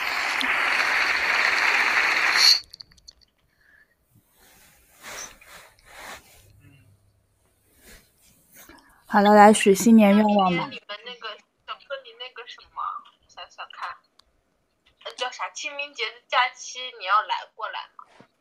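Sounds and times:
applause sound effect: 0.0s - 2.6s
faint noise: 2.2s - 18.3s
speech: 9.1s - 10.8s.

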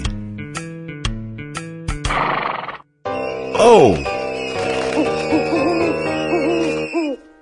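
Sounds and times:
music: 0.0s - 7.4s
horse neighing and snorting: 2.1s - 2.8s
speech: 3.6s - 4.1s.

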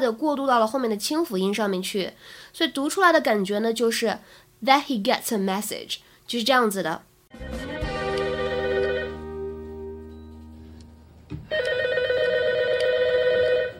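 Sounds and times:
speech: 0.0s - 7.5s
telephone ringing with an electronic trill: 7.5s - 9.2s, 11.5s - 13.7s.

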